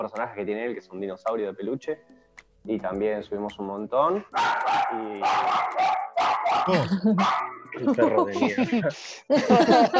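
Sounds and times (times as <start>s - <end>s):
speech: 0.0s - 9.9s
dog barking: 4.3s - 7.6s
laughter: 7.8s - 9.9s.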